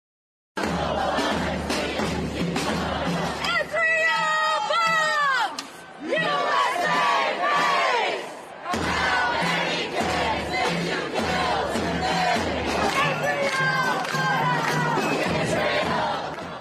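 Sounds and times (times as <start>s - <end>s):
large protest crowd chanting slogans: 0.6s - 16.5s
people shouting: 3.4s - 9.5s, 11.5s - 16.2s.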